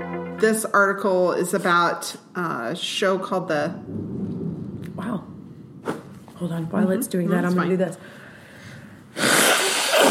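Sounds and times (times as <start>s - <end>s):
speech: 0.4s - 4.0s, 6.4s - 8.2s
person blowing their nose: 9.2s - 10.0s.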